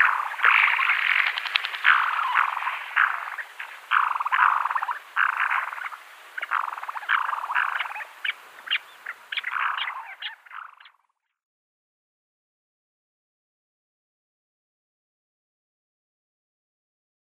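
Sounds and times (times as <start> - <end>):
Black-bellied sandgrouse calls: 0.0 - 11.2.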